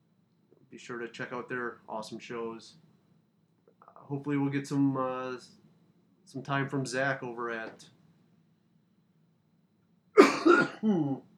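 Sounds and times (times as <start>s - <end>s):
speech: 0.7s - 2.9s, 4.1s - 5.6s, 6.3s - 8.0s, 10.8s - 11.3s
person coughing: 10.2s - 11.2s.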